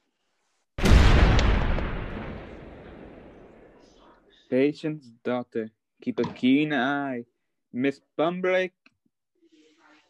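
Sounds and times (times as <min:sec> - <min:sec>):
cannon fired from a ship's deck: 0:00.8 - 0:03.8
speech: 0:04.5 - 0:08.8.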